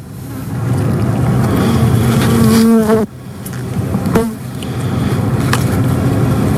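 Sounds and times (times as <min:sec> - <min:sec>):
many bees buzzing: 0:01.0 - 0:06.5.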